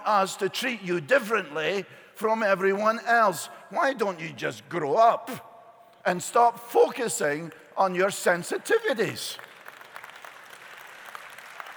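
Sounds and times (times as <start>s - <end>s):
speech: 0.0s - 9.5s
audience clapping: 9.3s - 11.7s.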